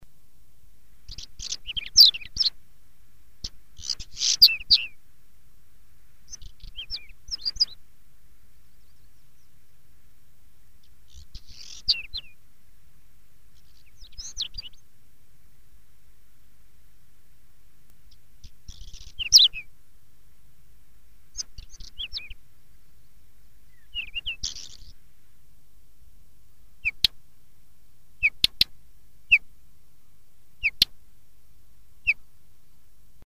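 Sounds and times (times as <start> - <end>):
stonechat calling: 1.0 - 2.6, 3.4 - 5.0, 6.2 - 7.8, 10.8 - 12.4, 13.5 - 14.8, 18.0 - 19.7, 21.3 - 25.0, 26.6 - 27.2, 28.2 - 31.0, 32.0 - 32.4.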